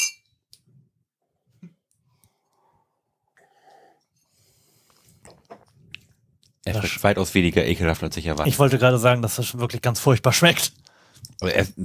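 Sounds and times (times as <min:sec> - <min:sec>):
glasses of Long Island Iced Tea clinking in a toast: 0:00.0 - 0:00.3
soft breathing: 0:02.1 - 0:05.2, 0:10.8 - 0:11.3
speech: 0:06.6 - 0:10.8, 0:11.4 - 0:11.8.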